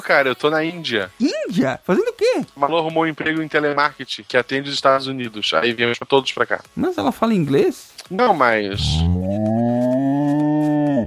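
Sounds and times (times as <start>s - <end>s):
speech: 0.0s - 9.2s
cow in India mooing: 8.7s - 11.0s.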